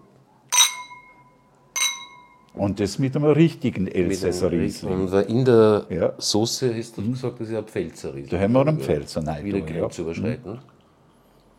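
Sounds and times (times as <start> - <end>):
wine glasses clinking in a toast: 0.5 - 2.6
speech: 2.6 - 10.7.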